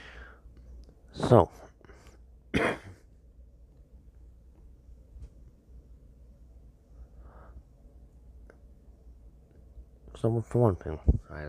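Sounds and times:
faint hiss: 0.0s - 2.4s, 6.6s - 11.4s
speech: 1.3s - 1.6s, 10.2s - 11.4s
short rough cough or throat clear from a man: 2.5s - 3.0s.

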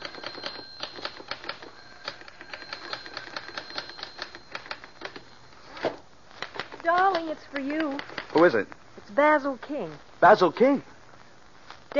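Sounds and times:
typewriter typing a script in a study: 0.0s - 5.2s
speech: 6.9s - 10.9s.

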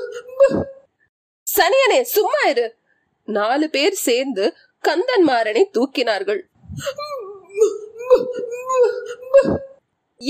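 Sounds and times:
speech: 1.6s - 10.2s
woman wailing loudly: 6.8s - 9.8s.

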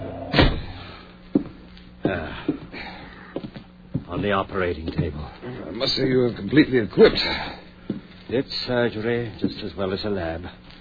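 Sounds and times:
door kicked shut with a booming slam: 0.0s - 0.8s
speech: 2.1s - 2.8s, 4.1s - 7.6s, 8.3s - 10.6s.

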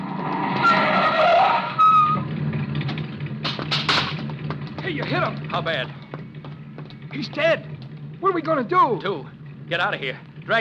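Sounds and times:
car tire squeal turning a corner at a street and alley intersection: 0.0s - 2.6s
car tires scraping as it slides to a halt: 0.0s - 10.6s
rumbling car engine: 0.0s - 10.6s
speech: 4.9s - 6.1s, 7.1s - 10.6s.

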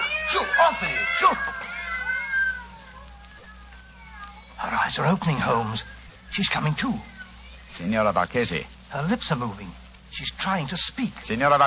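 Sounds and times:
about half a dozen cats locked in together meowing and yowling: 0.0s - 6.0s, 6.6s - 7.6s
speech: 0.4s - 1.7s, 4.9s - 7.1s, 7.7s - 11.6s.

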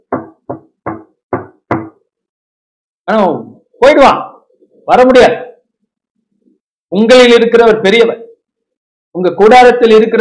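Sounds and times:
firm knocks on a door: 0.0s - 2.0s
speech: 3.1s - 4.2s, 4.9s - 5.4s, 6.9s - 8.2s, 9.1s - 10.1s.

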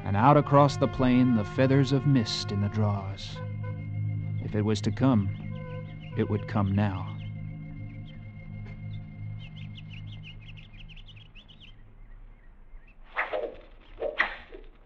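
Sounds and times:
birds chirping: 0.0s - 14.1s
speech: 0.1s - 3.5s, 4.5s - 5.4s, 6.2s - 7.1s
arrows whooshing through the air: 13.1s - 14.8s.

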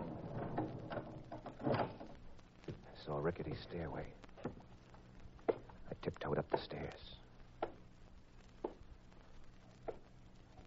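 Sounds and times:
warehouse door scraping and creaking open: 0.0s - 2.2s
speech: 3.0s - 4.3s, 6.0s - 7.2s.

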